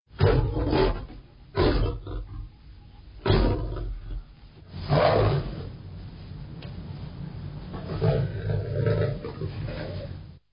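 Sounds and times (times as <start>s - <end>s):
lion roaring: 0.2s - 2.6s, 3.2s - 5.8s, 7.7s - 10.2s.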